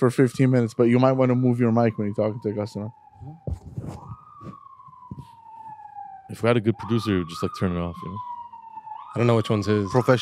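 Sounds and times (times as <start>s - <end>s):
speech: 0.0s - 4.1s, 6.3s - 8.3s, 9.2s - 10.1s
emergency vehicle sirens wailing outside: 0.0s - 10.1s
bumps: 3.2s - 5.2s.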